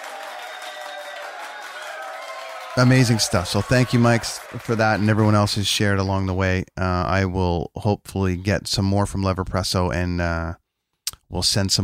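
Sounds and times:
applause sound effect: 0.0 - 5.9
speech: 2.8 - 10.6, 11.3 - 11.8.

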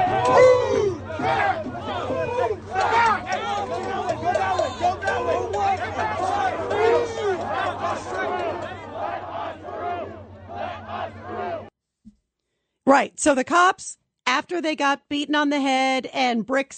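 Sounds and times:
large rioting crowd shouting, yelling and chanting: 0.0 - 11.7
speech: 12.9 - 16.7.

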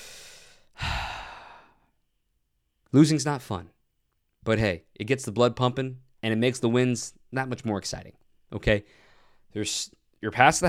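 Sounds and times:
deep breath: 0.0 - 1.9, 8.9 - 9.5
speech: 2.9 - 3.8, 4.4 - 10.6.

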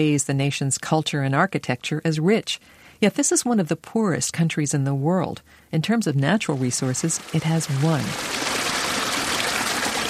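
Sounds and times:
speech: 0.0 - 8.4
small mountain stream flowing: 6.5 - 10.0.

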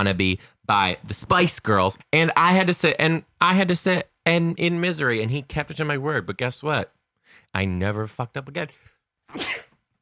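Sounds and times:
speech: 0.0 - 9.7
person sneezing: 9.3 - 9.8.

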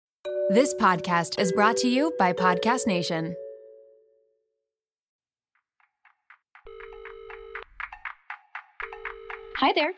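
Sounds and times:
speech: 0.5 - 3.4, 9.6 - 9.9
telephone ringing with electronic trill: 6.7 - 8.1, 8.8 - 9.9.

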